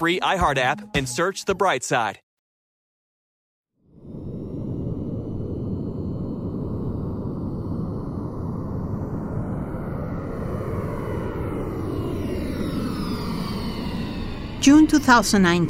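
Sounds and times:
speech: 0:00.0 - 0:02.2, 0:14.6 - 0:15.6
private jet engine roar overhead: 0:04.0 - 0:15.6.

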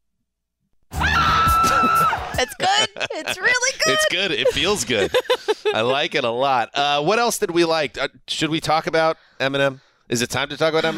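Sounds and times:
woman screaming: 0:01.0 - 0:04.2
laughter: 0:01.7 - 0:06.2, 0:10.8 - 0:10.9
speech: 0:03.2 - 0:10.9.

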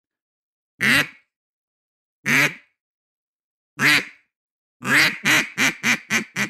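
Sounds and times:
duck call quacks: 0:00.8 - 0:01.2, 0:02.3 - 0:02.7, 0:03.8 - 0:04.2, 0:04.8 - 0:06.4.

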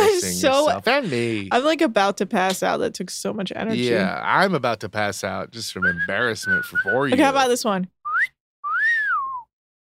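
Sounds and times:
speech: 0:00.4 - 0:08.0
person whistling in a whistling competition: 0:05.8 - 0:07.2, 0:08.1 - 0:09.5.

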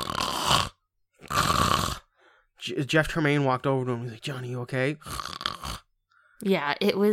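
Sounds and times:
loud rasping snoring: 0:00.0 - 0:02.3, 0:04.9 - 0:06.0
speech: 0:02.6 - 0:05.4, 0:06.4 - 0:07.1.

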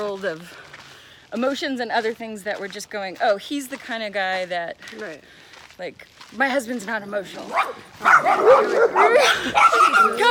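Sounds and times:
speech: 0:00.0 - 0:00.7, 0:01.3 - 0:10.3
dog barking with high yelping barks: 0:07.5 - 0:10.3.

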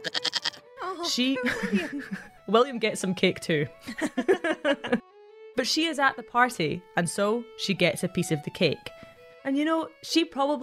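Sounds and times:
goat bleating: 0:00.0 - 0:00.7
speech: 0:01.0 - 0:05.0, 0:05.6 - 0:10.6
laughter: 0:01.4 - 0:02.3, 0:03.8 - 0:05.0.

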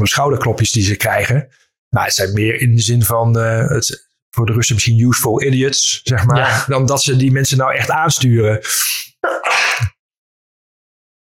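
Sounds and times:
speech: 0:00.0 - 0:09.9
loud sneeze: 0:09.2 - 0:09.9.

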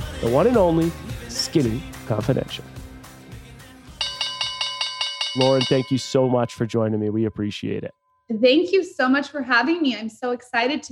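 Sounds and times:
speech: 0:00.2 - 0:02.8, 0:05.4 - 0:10.8
opening bell ringing in metallic strikes: 0:04.0 - 0:07.5.

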